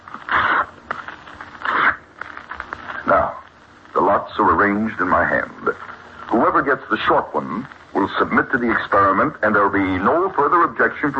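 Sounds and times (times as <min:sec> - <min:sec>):
strips of paper torn by hand: 0:00.0 - 0:03.2
speech: 0:04.4 - 0:11.1.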